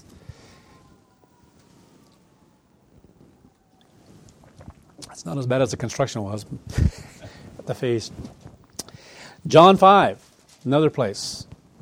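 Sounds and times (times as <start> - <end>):
passing emergency vehicle sirens wailing: 0.0 - 6.2
low traffic-like noise in a busy place: 0.0 - 11.6
speech: 5.2 - 7.1, 7.7 - 8.4, 9.4 - 11.5.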